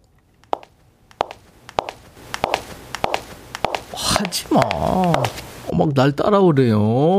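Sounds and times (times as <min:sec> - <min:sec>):
woman's high-heeled shoes clicking across a hard floor: 0:00.5 - 0:05.5
speech: 0:04.2 - 0:07.1.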